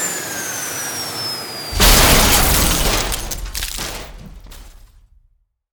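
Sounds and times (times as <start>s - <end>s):
crash: 1.8s - 5.4s.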